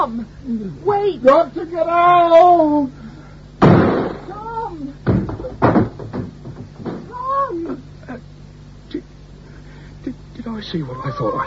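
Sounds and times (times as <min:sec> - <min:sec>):
speech: 0:00.0 - 0:03.1, 0:10.5 - 0:11.4
door forced open with heavy booming impacts: 0:03.6 - 0:04.3, 0:05.0 - 0:07.2.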